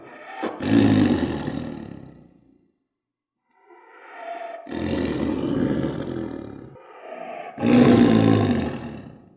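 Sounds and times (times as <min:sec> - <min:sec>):
tiger roaring: 0:00.0 - 0:02.3, 0:03.7 - 0:09.3.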